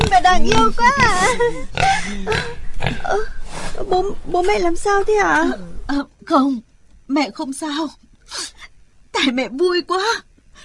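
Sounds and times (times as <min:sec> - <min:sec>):
breeding piglet grunting: 0:00.0 - 0:03.4
speech: 0:00.4 - 0:03.3, 0:03.9 - 0:08.6, 0:09.2 - 0:10.3.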